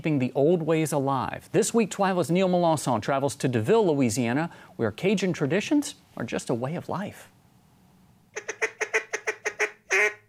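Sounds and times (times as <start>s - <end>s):
speech: 0.0s - 7.4s
handmade duck call quacking: 8.4s - 10.2s.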